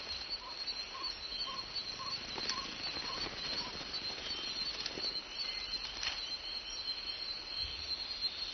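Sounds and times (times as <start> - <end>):
high-pitched insect chirring at night: 0.0 - 8.5
giant hawk moth wings fluttering: 2.0 - 5.2.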